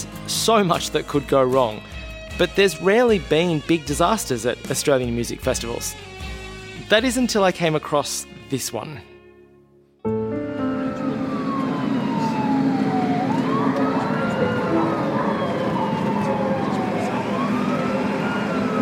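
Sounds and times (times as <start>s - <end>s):
speech: 0.3s - 6.1s, 6.9s - 9.1s
ambulance sirens wailing: 10.1s - 18.8s
engine and road noise: 10.4s - 18.8s.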